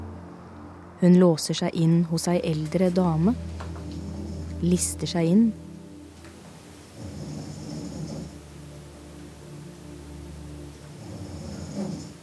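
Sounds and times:
speech: 1.0s - 3.6s, 4.6s - 5.6s
elderly woman snoring in bed: 3.8s - 4.9s, 6.9s - 8.6s, 10.9s - 12.2s.

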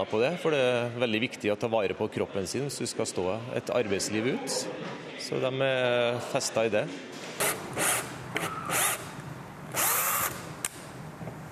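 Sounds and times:
speech: 0.0s - 7.3s
cordless power drill whirring: 7.4s - 9.1s, 9.7s - 10.5s.

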